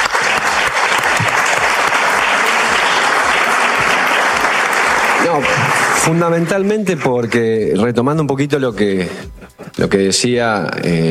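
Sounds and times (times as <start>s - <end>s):
audience applause at a public event: 0.0s - 7.4s
speech: 5.3s - 11.0s.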